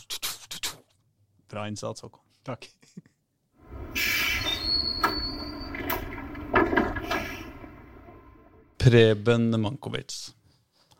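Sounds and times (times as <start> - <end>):
speech: 1.5 - 3.1, 8.8 - 10.4
tram bound for Grorud rumbling with electric hum: 3.6 - 8.8
tram sliding doors clunking: 3.6 - 8.8
thin high squeak of tram wheels or doors: 3.8 - 7.7.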